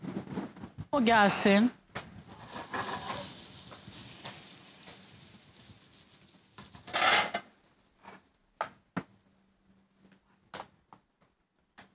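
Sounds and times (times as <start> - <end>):
speech: 0.9 - 1.8
lightly blanched asparagus sizzling in oil in a hot pan: 2.2 - 7.4.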